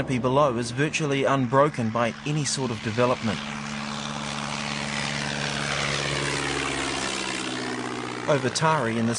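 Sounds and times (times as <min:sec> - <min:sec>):
speech: 0:00.0 - 0:03.7, 0:08.3 - 0:09.1
propeller plane engine droning in cabin: 0:00.0 - 0:09.1.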